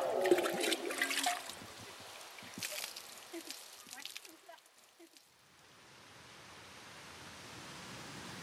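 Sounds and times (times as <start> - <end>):
water splashing from fountains on the Capitol grounds: 0.0 - 5.4.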